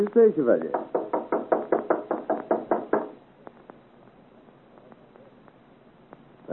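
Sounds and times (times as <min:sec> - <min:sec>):
faint light taps on a door: 0:00.0 - 0:03.2
loud knocking on a door: 0:00.6 - 0:03.2.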